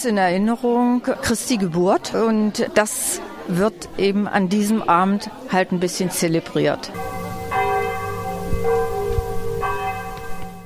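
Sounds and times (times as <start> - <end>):
speech: 0.0 - 7.2
village church bells ringing: 7.0 - 10.6.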